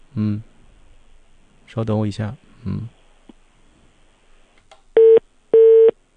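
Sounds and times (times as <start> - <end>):
speech: 1.8 - 3.0
telephone keypad beeps while dialing a call: 5.0 - 5.9.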